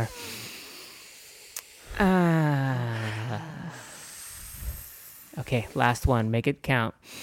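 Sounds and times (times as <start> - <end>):
speech: 0.0 - 0.4, 2.0 - 2.3, 5.5 - 7.2
deep voiced belly exhale during a guided deep-breathing exercise: 0.0 - 5.4.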